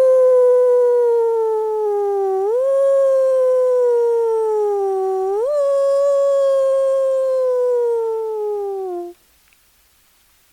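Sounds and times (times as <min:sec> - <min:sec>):
coyote howling: 0:00.0 - 0:09.2.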